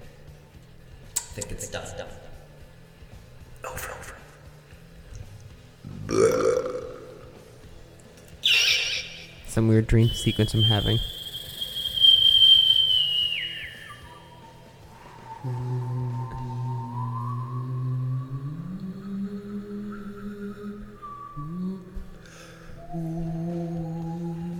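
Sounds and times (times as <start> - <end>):
speech: 1.4 - 2.3, 9.6 - 11.2
person whistling: 8.4 - 9.3, 10.0 - 24.5
person humming a low buzzy hum: 15.3 - 24.5.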